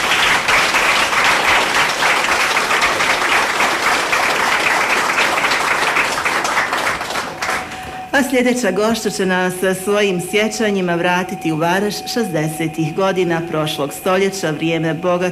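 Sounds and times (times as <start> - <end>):
strong audience applause at a gathering: 0.0 - 8.0
speech: 8.2 - 15.3.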